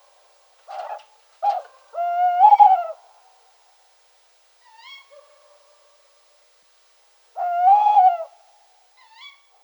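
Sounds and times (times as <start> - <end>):
Strix aluco tawny owl hooting: 0.7 - 3.0, 7.4 - 9.5.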